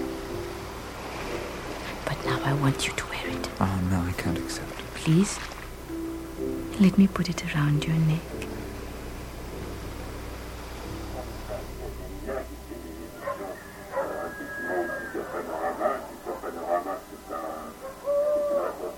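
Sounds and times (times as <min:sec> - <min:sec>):
rustling noise: 0:00.0 - 0:18.9
speech: 0:02.4 - 0:05.6, 0:06.8 - 0:08.4
owl hooting: 0:13.1 - 0:18.9.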